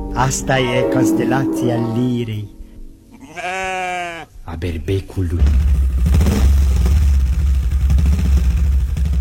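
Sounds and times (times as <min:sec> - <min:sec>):
speech: 0:00.2 - 0:02.5, 0:04.5 - 0:05.8
motorcycle engine revving: 0:05.4 - 0:09.1.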